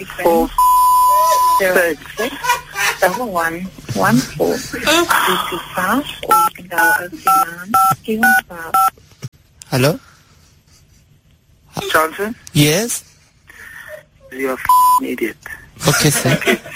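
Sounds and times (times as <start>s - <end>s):
speech: 0.0s - 0.6s, 1.6s - 8.9s, 9.7s - 10.1s, 11.8s - 13.1s, 14.3s - 16.7s
laughter: 1.1s - 3.2s, 4.7s - 5.6s, 15.9s - 16.7s
telephone keypad dialing tones during a call transfer: 6.3s - 8.9s.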